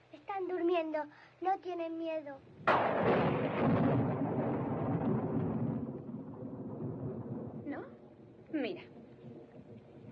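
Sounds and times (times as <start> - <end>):
speech: 0.4 - 3.4, 8.6 - 9.0
deep sustained roll of thunder rumbling: 2.6 - 10.0.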